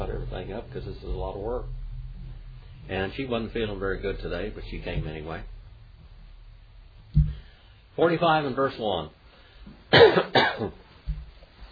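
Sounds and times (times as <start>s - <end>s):
speech: 0.4s - 1.8s, 2.9s - 5.5s, 8.0s - 10.8s
harsh coughs: 9.9s - 10.8s.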